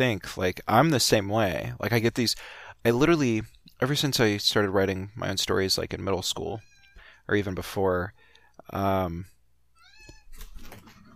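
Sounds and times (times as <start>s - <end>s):
speech: 0.0s - 6.7s, 7.3s - 9.3s
cat meowing: 9.8s - 10.3s.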